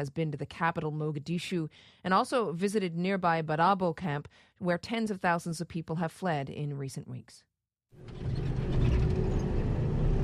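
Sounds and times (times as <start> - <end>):
speech: 0.0 - 8.5
armored vehicle with machine guns on top travelling: 8.0 - 10.2
rattling clanking mechanical noise of an armored vehicle: 8.0 - 10.2.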